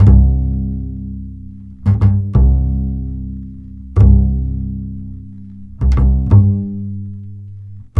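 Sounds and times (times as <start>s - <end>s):
upright bass: 0.0s - 7.9s.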